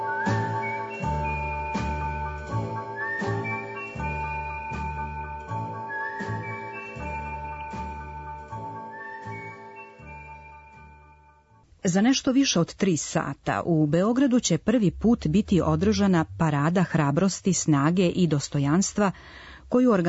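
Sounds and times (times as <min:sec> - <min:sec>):
person whistling an old signal: 0:00.0 - 0:11.0
rhythmic musical accompaniment with repeating beats: 0:00.0 - 0:11.6
speech: 0:11.8 - 0:20.0.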